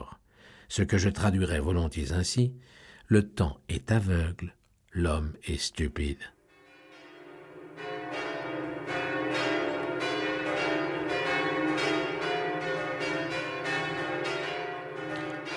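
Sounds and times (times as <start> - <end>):
speech: 0.7 - 6.4
bells of the north tower of Notre-Dame cathedral pealing: 6.5 - 15.5.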